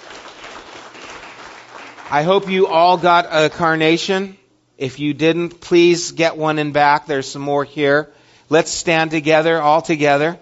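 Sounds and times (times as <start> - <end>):
audience applauding: 0.0 - 2.7
speech: 2.1 - 10.4.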